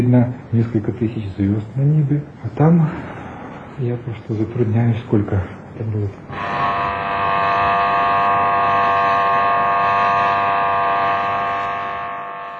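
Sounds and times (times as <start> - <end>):
speech: 0.0 - 3.2, 3.8 - 6.6
attention-signal buzzer at an astronomical observatory: 6.3 - 12.5.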